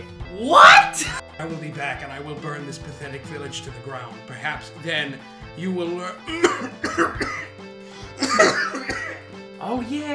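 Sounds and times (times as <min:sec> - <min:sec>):
speech: 0:00.4 - 0:07.5, 0:09.6 - 0:10.1
person coughing in a harsh raspy fit: 0:06.3 - 0:07.6, 0:08.2 - 0:09.2.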